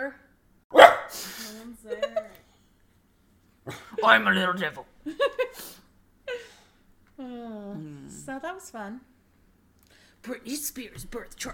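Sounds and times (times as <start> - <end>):
dog barking: 0.7 - 1.1
speech: 4.0 - 5.3, 8.3 - 9.1, 10.2 - 11.5.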